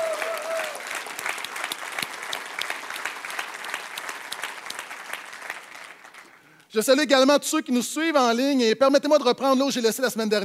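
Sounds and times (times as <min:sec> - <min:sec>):
audience clapping in sustained dense applause: 0:00.0 - 0:06.6
speech: 0:06.8 - 0:10.4.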